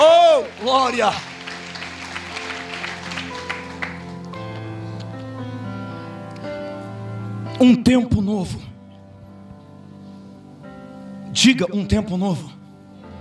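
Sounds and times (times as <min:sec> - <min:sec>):
audience applauding to give glory to God: 0:00.0 - 0:04.6
speech: 0:00.9 - 0:01.3, 0:07.6 - 0:08.7, 0:11.4 - 0:12.6.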